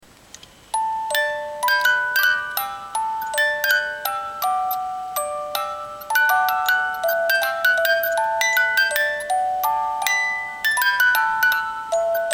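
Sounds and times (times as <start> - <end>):
18-tooth music box: 0.7 - 12.3.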